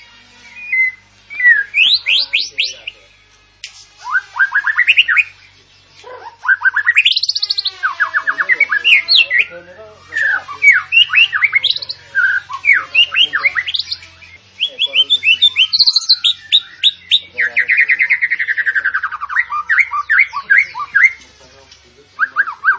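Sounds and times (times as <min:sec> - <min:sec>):
sooty-headed bulbul singing actively: 0:00.0 - 0:22.7.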